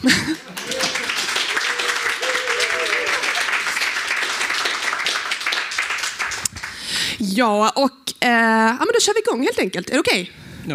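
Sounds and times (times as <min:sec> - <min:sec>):
speech: 0:00.0 - 0:00.4, 0:07.4 - 0:10.7
laughter: 0:00.0 - 0:04.0
dense loud applause of many hands clapping: 0:00.1 - 0:06.9.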